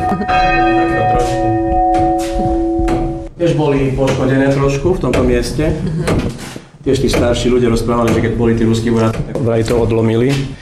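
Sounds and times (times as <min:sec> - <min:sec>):
church bells ringing: 0:00.0 - 0:03.4
speech: 0:00.2 - 0:01.4, 0:03.4 - 0:10.5.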